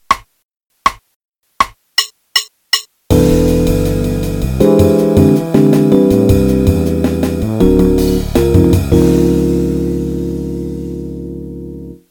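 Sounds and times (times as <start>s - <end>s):
jazz piano playing a C major scale: 3.1s - 12.0s.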